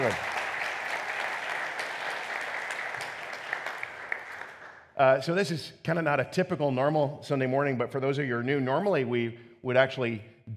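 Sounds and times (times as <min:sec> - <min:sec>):
speech: 0:00.0 - 0:00.3, 0:05.0 - 0:10.5
room full of people applauding: 0:00.0 - 0:04.8.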